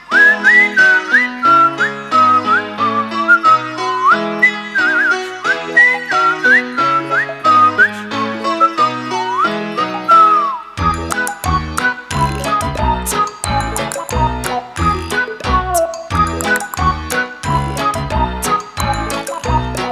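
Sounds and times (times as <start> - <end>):
bright whistled tune with a lively melody: 0.0 - 19.9
steady instrumental accompaniment: 10.8 - 19.9.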